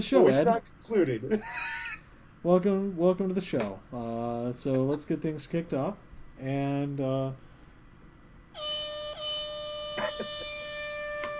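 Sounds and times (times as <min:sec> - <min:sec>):
speech: 0:00.0 - 0:01.8, 0:02.4 - 0:07.5
air horn sound effect multi-tone blast: 0:08.6 - 0:11.3.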